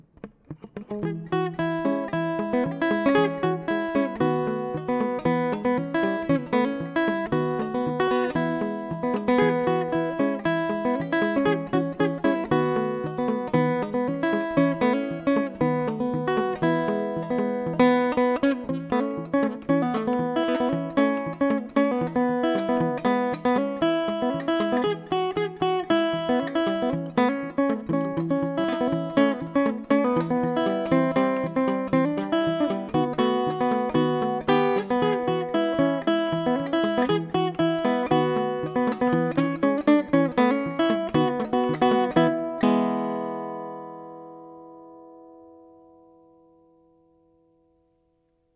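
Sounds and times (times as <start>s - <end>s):
ukulele: 0.0s - 45.5s.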